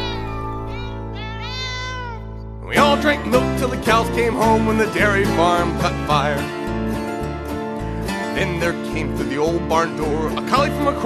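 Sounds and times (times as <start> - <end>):
cat meowing: 0.0 - 2.5
song with steady music backing: 2.6 - 11.0
speech: 2.7 - 6.6, 8.4 - 11.0.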